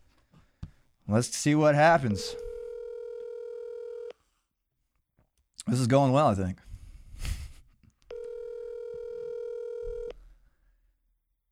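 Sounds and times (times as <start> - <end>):
speech: 1.1 - 2.4, 5.6 - 7.4
phone line steady electronic tone: 2.2 - 4.1, 8.1 - 10.1.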